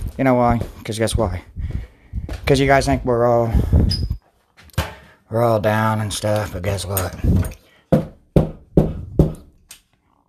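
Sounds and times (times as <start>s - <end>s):
speech: 0.2s - 1.7s, 2.5s - 4.0s, 5.3s - 7.6s
knocking on a door: 7.9s - 9.4s.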